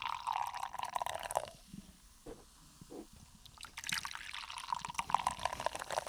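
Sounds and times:
beer pouring from a can into a glass: 0.0 - 1.6, 3.5 - 6.0.

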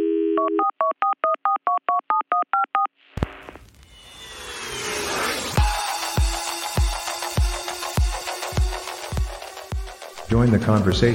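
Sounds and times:
telephone line dial tone: 0.0 - 2.9
touch-tone dialing beeps: 0.4 - 2.9
whoosh: 3.2 - 6.2
music with a thumping beat: 5.6 - 11.1
speech: 10.3 - 11.1.

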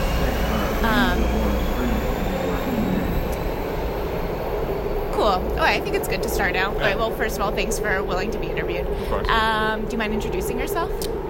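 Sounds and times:
faint indistinct voices murmuring: 0.0 - 3.4, 5.6 - 7.3
metro trains moving through a station: 0.0 - 11.2
speech: 5.3 - 11.2.

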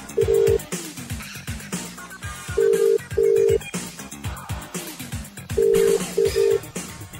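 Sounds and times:
loud rhythmic music bed with a thumping beat: 0.0 - 7.1
telephone ringing unanswered with double electronic ring tones: 0.1 - 0.7, 2.5 - 3.7, 5.6 - 6.7.

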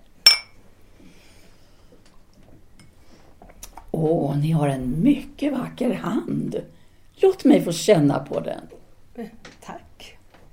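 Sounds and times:
wine glasses clinking in a toast at a restaurant: 0.2 - 0.6
speech: 4.0 - 9.8.

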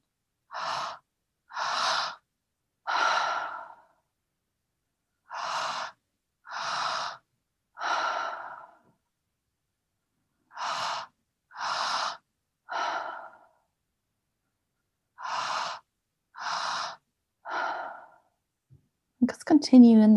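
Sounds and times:
deep breathing into belly and chest then exhaling: 0.5 - 4.1, 5.2 - 9.0, 10.5 - 13.7, 15.2 - 18.4
speech: 19.6 - 20.1.

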